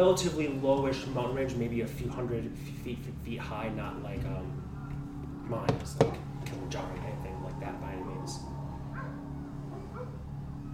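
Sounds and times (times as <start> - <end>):
speech: 0.0 - 4.7, 5.5 - 8.6
steady low hum: 0.0 - 10.7
dogs barking in the distance near jungle below a low mountain range: 4.5 - 10.7.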